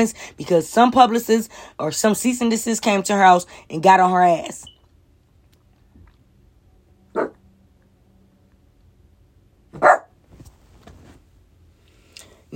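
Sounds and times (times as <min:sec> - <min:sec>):
speech: 0:00.0 - 0:04.7
dog barking: 0:07.1 - 0:07.4, 0:09.8 - 0:10.2.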